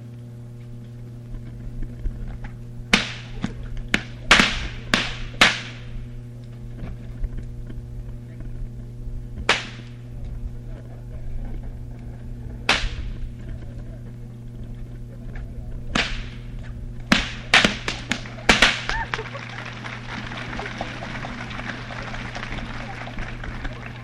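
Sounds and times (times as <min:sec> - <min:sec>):
steady low hum: 0:00.0 - 0:24.0
whips cracking to cut straws from performers' hands: 0:02.9 - 0:05.9, 0:09.5 - 0:10.0, 0:12.7 - 0:13.2, 0:15.9 - 0:16.5, 0:17.1 - 0:19.2
laughter: 0:10.6 - 0:12.3, 0:18.0 - 0:24.0.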